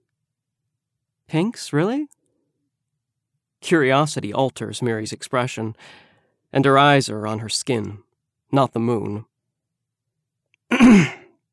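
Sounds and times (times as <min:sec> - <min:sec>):
speech: 0:01.3 - 0:02.2, 0:03.6 - 0:09.3, 0:10.7 - 0:11.2
woman clearing her throat: 0:10.7 - 0:11.3.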